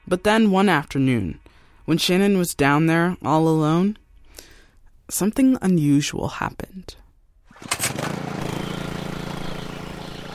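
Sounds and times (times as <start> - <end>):
speech: 0.1 - 4.0, 5.1 - 7.0, 7.6 - 8.0
small engine-driven water pump running at the bottom of a canyon: 7.5 - 10.3.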